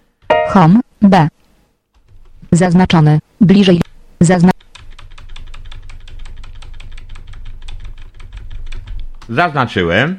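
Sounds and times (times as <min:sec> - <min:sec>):
low hum: 0:00.0 - 0:10.1
speech: 0:00.5 - 0:01.4, 0:02.5 - 0:04.5, 0:09.3 - 0:10.1
computer keyboard keys clicking as the Windows key and letter C are pressed: 0:04.6 - 0:09.4.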